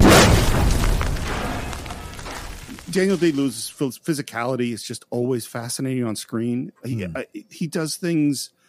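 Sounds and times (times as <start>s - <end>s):
dynamite blast in a mine shaft: 0.0s - 3.6s
speech: 2.9s - 8.6s.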